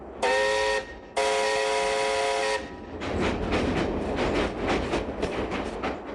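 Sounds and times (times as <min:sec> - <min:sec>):
train horn blasts: 0:00.2 - 0:02.8
train wheels rumbling and clattering over the rails: 0:02.4 - 0:06.1.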